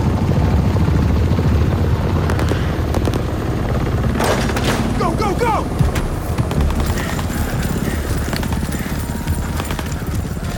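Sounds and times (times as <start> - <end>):
military helicopters landing, rotors throbbing: 0.0 - 10.5.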